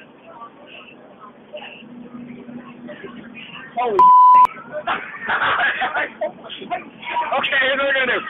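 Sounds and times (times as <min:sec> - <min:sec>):
voices and chatter: 0:00.0 - 0:08.2
speech: 0:02.9 - 0:08.2
censor bleep tone: 0:04.0 - 0:04.5
laughter: 0:04.5 - 0:07.2.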